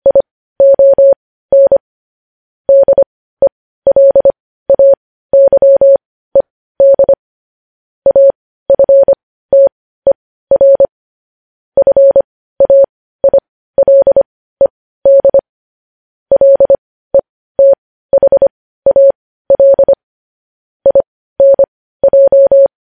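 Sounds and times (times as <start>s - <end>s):
Morse code beeps: 0.0s - 1.8s, 2.7s - 3.1s, 3.9s - 6.0s, 6.8s - 7.2s, 8.1s - 9.7s, 10.5s - 10.9s, 11.8s - 15.4s, 16.3s - 20.0s, 20.8s - 22.7s.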